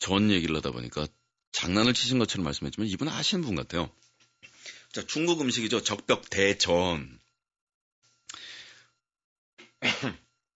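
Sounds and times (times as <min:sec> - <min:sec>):
speech: 0:00.1 - 0:07.2, 0:10.0 - 0:10.2
person coughing: 0:09.6 - 0:10.3.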